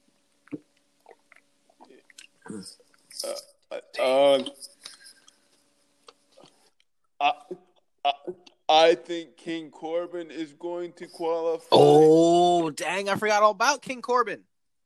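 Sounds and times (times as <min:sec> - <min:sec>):
person sipping and swallowing water: 0:00.4 - 0:03.1
speech: 0:02.5 - 0:04.7, 0:07.2 - 0:14.5.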